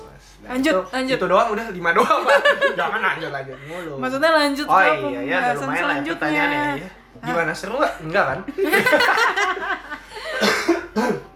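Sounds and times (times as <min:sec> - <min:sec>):
speech: 0:00.4 - 0:09.8
laughter: 0:02.0 - 0:04.0, 0:08.3 - 0:10.4
man coughing: 0:10.2 - 0:11.3.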